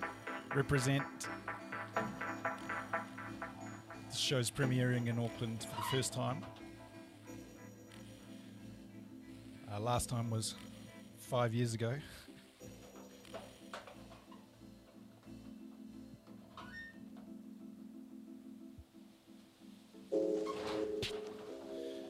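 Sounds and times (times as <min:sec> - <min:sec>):
corrugated iron roof creaking and groaning in wind: 0:00.0 - 0:06.6, 0:20.3 - 0:21.9
speech: 0:00.5 - 0:01.3, 0:04.2 - 0:06.6, 0:09.8 - 0:10.7, 0:11.3 - 0:12.2.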